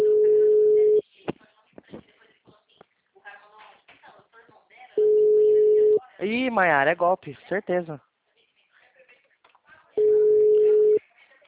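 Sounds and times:
telephone busy tone during a call attempt: 0:00.0 - 0:01.0, 0:05.0 - 0:06.0, 0:10.0 - 0:11.0
speech: 0:06.3 - 0:08.1.

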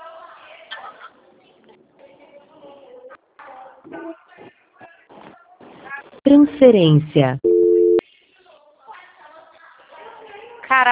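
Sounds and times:
speech: 0:06.3 - 0:07.5
telephone busy tone after a dropped call: 0:07.2 - 0:08.0.

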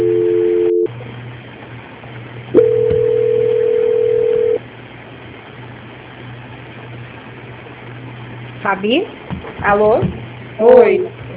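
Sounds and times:
steady two-note telephone line tone during a call transfer: 0:00.0 - 0:00.9, 0:02.6 - 0:04.6
speech: 0:08.7 - 0:11.3.

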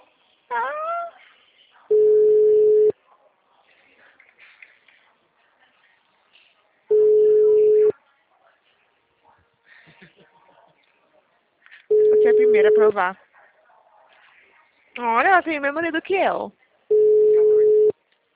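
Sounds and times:
mobile phone call ringback tones: 0:01.9 - 0:02.9, 0:06.9 - 0:07.9, 0:16.9 - 0:17.9
speech: 0:12.6 - 0:13.2, 0:15.0 - 0:16.6.

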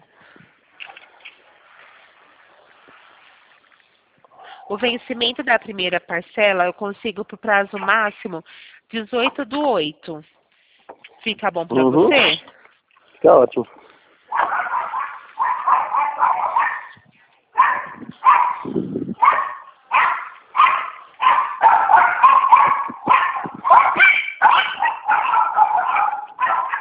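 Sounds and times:
speech: 0:04.7 - 0:10.4, 0:11.2 - 0:12.5, 0:13.2 - 0:13.8
pitbull barking: 0:14.3 - 0:17.0, 0:17.6 - 0:26.8.

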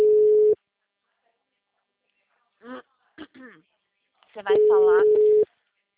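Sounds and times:
telephone ringback tone of a call ringing out: 0:00.0 - 0:00.6, 0:04.5 - 0:05.4
speech: 0:04.4 - 0:05.3.

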